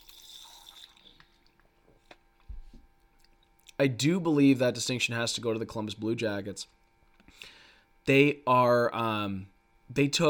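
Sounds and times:
sipping and swallowing water: 0:00.0 - 0:01.8
speech: 0:03.8 - 0:06.8, 0:08.0 - 0:10.2.

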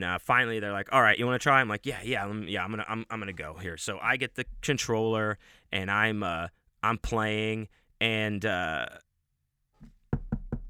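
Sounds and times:
speech: 0:00.0 - 0:09.0
sharp loud knocks imitating a knock at a door: 0:09.8 - 0:10.6.

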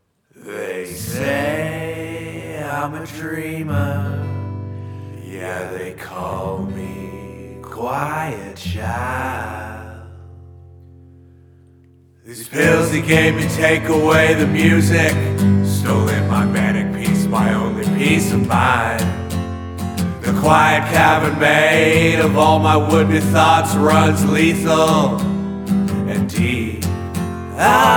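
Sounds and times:
smooth guitar: 0:00.5 - 0:27.9
child choir singing in London: 0:12.5 - 0:19.0, 0:20.2 - 0:25.2, 0:27.6 - 0:27.9.

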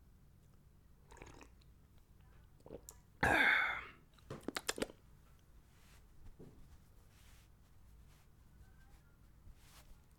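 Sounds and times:
swallowing gulps: 0:01.0 - 0:01.7, 0:02.6 - 0:05.0
person sipping water: 0:01.1 - 0:01.7, 0:02.6 - 0:05.0.

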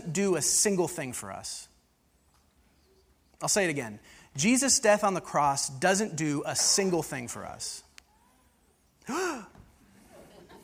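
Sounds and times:
speech: 0:00.1 - 0:01.7, 0:03.4 - 0:07.8, 0:09.1 - 0:09.5
audience member gasping: 0:09.0 - 0:09.6
laughter: 0:09.9 - 0:10.6.

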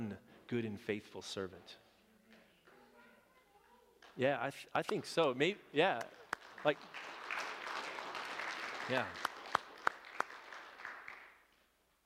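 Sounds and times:
speech: 0:00.5 - 0:01.8, 0:04.2 - 0:07.2, 0:08.9 - 0:09.3
audience applause: 0:06.1 - 0:11.4.

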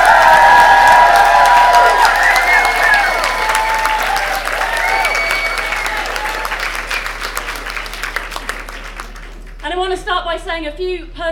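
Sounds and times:
whoops and cheers: 0:00.0 - 0:07.1
large crowd applauding loudly: 0:00.0 - 0:09.7
speech: 0:10.6 - 0:11.3.

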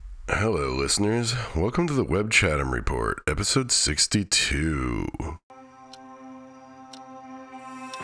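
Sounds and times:
speech: 0:00.4 - 0:05.4
clock ticking: 0:06.8 - 0:08.0.

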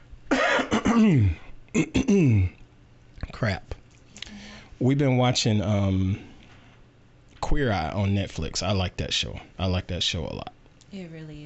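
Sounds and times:
person coughing into a microphone: 0:00.3 - 0:02.6
speech: 0:01.0 - 0:02.6, 0:03.4 - 0:03.8, 0:04.8 - 0:06.3, 0:07.5 - 0:11.4.

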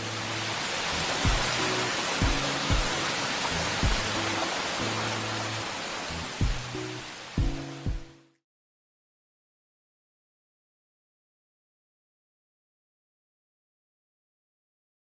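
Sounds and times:
dense rain falling: 0:00.0 - 0:08.2
soft low musical tones: 0:00.0 - 0:08.4
deep thumps: 0:01.3 - 0:01.6, 0:02.2 - 0:03.0, 0:03.8 - 0:04.1, 0:06.4 - 0:06.7.

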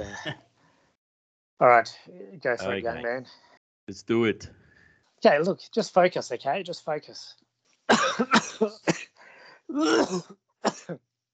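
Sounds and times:
person coughing and clearing throat: 0:00.0 - 0:00.4, 0:07.9 - 0:11.0
speech: 0:00.0 - 0:00.5, 0:01.6 - 0:04.6, 0:05.2 - 0:09.1, 0:09.7 - 0:11.1.

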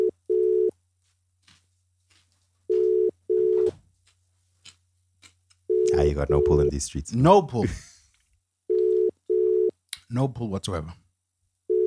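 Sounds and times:
electronic phone ringback tone, unanswered: 0:00.0 - 0:00.7, 0:02.7 - 0:03.8, 0:05.7 - 0:06.7, 0:08.7 - 0:09.7, 0:11.7 - 0:11.8
speech: 0:06.1 - 0:07.9, 0:10.1 - 0:11.0.

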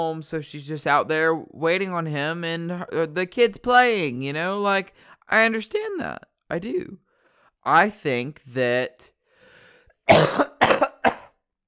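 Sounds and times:
speech: 0:00.0 - 0:07.0, 0:07.6 - 0:09.1, 0:10.1 - 0:10.5
person coughing: 0:10.1 - 0:11.4.

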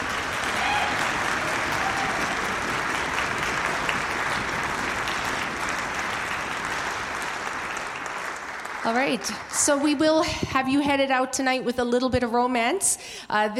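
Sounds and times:
large audience applauding: 0:00.0 - 0:10.2
speech: 0:08.9 - 0:13.5.

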